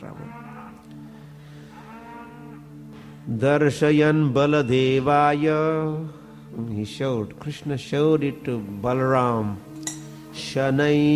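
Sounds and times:
calf giving a drawn-out low mooing call: 0.0s - 1.0s, 1.6s - 2.9s
speech: 3.3s - 9.7s, 10.4s - 11.1s.

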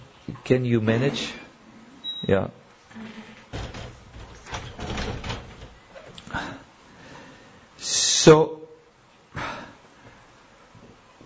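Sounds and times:
speech: 0.5s - 1.4s, 2.2s - 3.2s, 8.2s - 8.6s
door scraping and rattling as it settles: 2.9s - 6.2s
door pushed shut with a thud: 3.5s - 6.2s.

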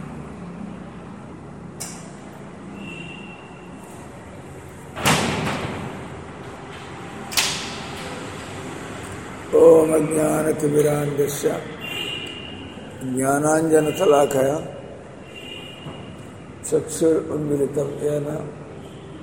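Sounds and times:
doors thudding shut: 4.9s - 6.1s
speech: 9.6s - 11.8s, 13.0s - 14.8s, 16.7s - 18.6s.

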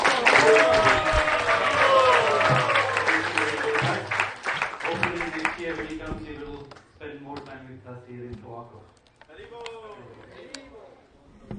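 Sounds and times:
audience applause at a religious gathering: 0.0s - 6.0s.

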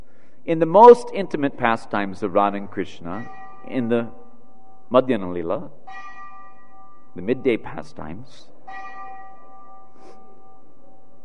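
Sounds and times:
speech: 0.4s - 4.2s, 4.9s - 6.1s, 7.2s - 8.9s
clock bell chiming: 3.1s - 11.2s.

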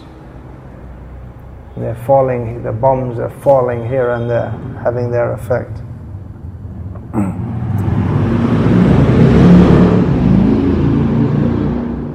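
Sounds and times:
speech: 1.8s - 5.9s
loud motorbike revving past: 7.2s - 12.1s.

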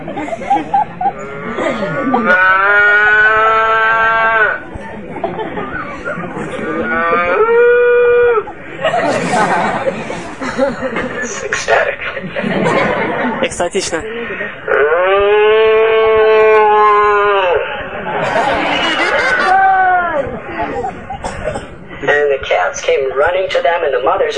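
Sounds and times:
speech: 0.0s - 0.8s, 13.5s - 15.2s, 22.9s - 24.3s
laughter: 0.0s - 2.7s, 4.7s - 7.3s, 8.0s - 14.6s, 17.8s - 21.6s
cows mooing: 1.2s - 4.6s, 6.5s - 8.5s, 14.7s - 19.6s.

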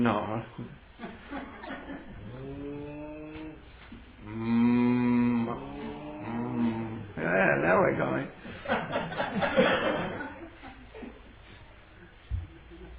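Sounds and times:
speech: 0.0s - 0.8s
laughter: 1.0s - 2.3s, 8.4s - 11.6s
person imitating a cow mooing: 2.2s - 3.6s, 4.2s - 7.2s.

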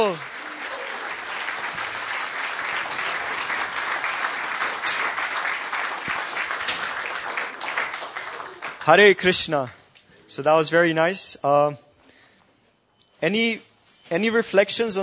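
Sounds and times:
speech: 0.0s - 0.3s, 8.9s - 11.8s, 13.2s - 15.0s
audience applause for performers after a drama: 0.0s - 9.4s.

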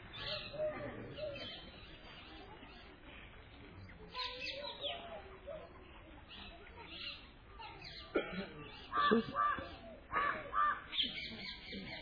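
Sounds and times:
other birds calling by a lake: 0.0s - 5.2s, 6.3s - 12.0s
faint voice: 0.1s - 12.0s
crow cawing: 8.9s - 10.9s.

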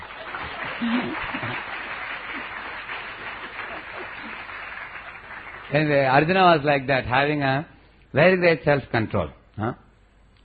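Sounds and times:
crowd applauding: 0.0s - 6.2s
speech: 0.8s - 1.7s, 5.7s - 9.8s.

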